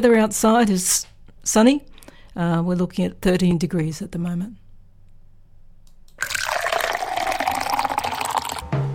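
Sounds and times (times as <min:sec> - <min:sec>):
speech: 0:00.0 - 0:04.6
coffee pouring into a cup: 0:06.2 - 0:08.6.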